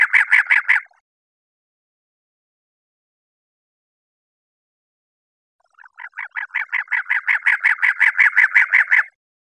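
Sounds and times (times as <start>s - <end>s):
cactus wren raspy chattering: 0.0s - 1.0s, 5.7s - 9.2s.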